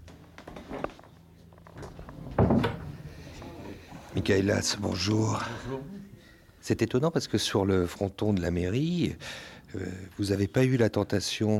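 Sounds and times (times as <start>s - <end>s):
wooden door thudding and rattling as it shuts: 2.3s - 2.9s
speech: 4.2s - 6.0s, 6.6s - 11.5s.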